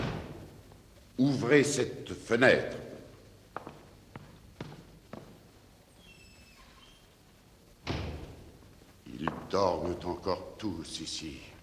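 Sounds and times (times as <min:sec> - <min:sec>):
door being closed in a stage play: 0:00.0 - 0:00.4, 0:07.8 - 0:08.5
speech: 0:01.2 - 0:02.9, 0:10.0 - 0:11.6.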